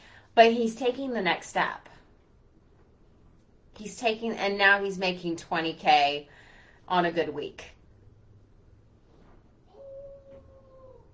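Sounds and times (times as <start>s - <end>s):
speech: 0.4s - 1.9s, 3.8s - 7.8s
howl outside the window: 9.7s - 11.1s.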